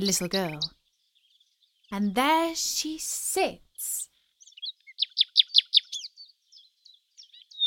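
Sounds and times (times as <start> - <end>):
speech: 0.0 - 0.8, 1.9 - 4.1
small grey nightingale singing on a bough: 0.0 - 7.6.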